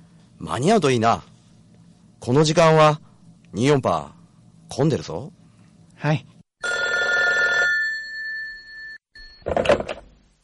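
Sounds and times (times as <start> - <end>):
speech: 0.4 - 1.3, 2.2 - 5.4, 6.0 - 6.3
telephone ringing with buzzy bell trill: 6.6 - 9.4.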